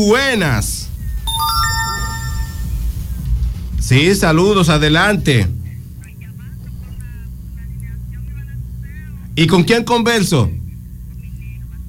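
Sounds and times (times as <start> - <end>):
speech: 0.0 - 0.8, 3.8 - 5.6, 9.4 - 10.6
telephone ringing for an incoming call: 1.3 - 2.8.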